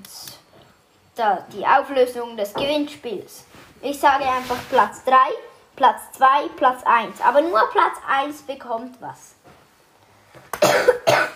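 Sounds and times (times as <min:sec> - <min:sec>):
speech: 0:01.2 - 0:09.3
harsh coughs: 0:10.6 - 0:11.3.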